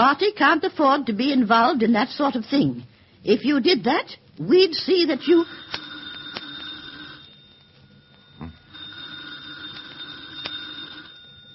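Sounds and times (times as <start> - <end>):
speech: 0.0 - 5.8
telephone ringing with electronic trill: 5.0 - 11.5.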